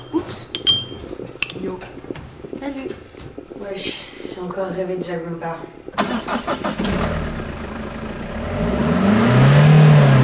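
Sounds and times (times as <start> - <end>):
speech: 2.6 - 7.0
broken-down car engine cranking, running and revving: 6.0 - 10.2.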